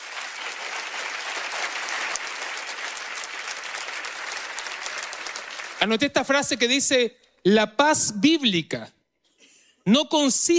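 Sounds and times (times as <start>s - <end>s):
crowd clapping loudly: 0.0s - 6.9s
speech: 5.8s - 9.0s, 9.8s - 10.5s.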